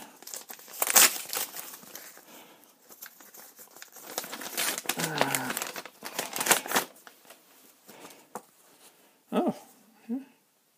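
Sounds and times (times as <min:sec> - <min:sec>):
Christmas card crinkling and rustling as it is pulled out and opened: 0:00.0 - 0:08.5.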